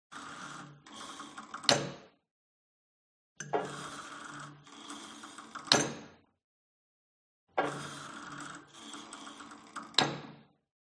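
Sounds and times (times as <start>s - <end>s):
old gym cable machine pull and soft drop: 0.1s - 2.1s, 3.4s - 6.2s, 7.6s - 10.4s.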